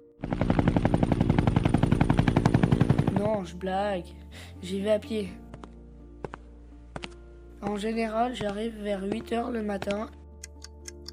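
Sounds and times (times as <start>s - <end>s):
helicopter rotor chopping: 0.2s - 3.4s
speech: 3.4s - 5.4s, 7.6s - 10.2s.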